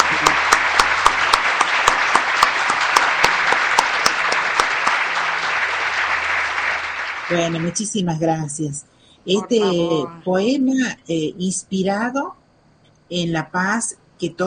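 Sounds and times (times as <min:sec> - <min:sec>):
audience applause: 0:00.0 - 0:07.8
speech: 0:07.3 - 0:12.4, 0:13.1 - 0:14.4.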